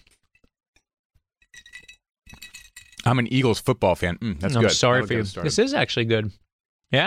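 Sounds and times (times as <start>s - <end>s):
glasses clinking in a toast: 1.5s - 3.0s
speech: 3.0s - 7.0s.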